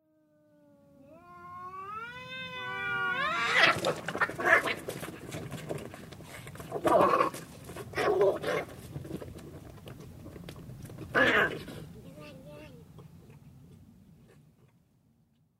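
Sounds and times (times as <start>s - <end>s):
cats fighting: 1.0s - 12.0s.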